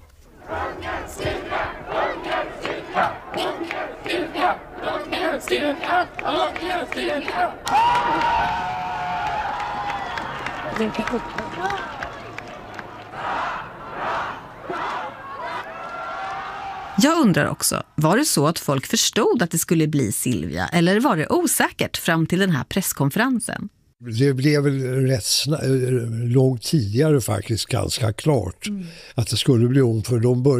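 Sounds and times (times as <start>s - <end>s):
large crowd shouting rhythmic hurrahs: 0.4s - 17.5s
excited crowd chatter: 0.4s - 17.8s
speech: 5.4s - 8.9s, 10.8s - 11.9s, 17.0s - 30.5s.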